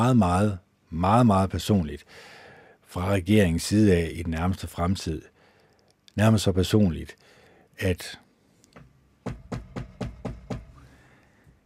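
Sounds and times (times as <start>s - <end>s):
speech: 0.0s - 5.3s, 6.2s - 7.2s, 7.8s - 8.2s
firm knocking on a door: 9.2s - 10.8s.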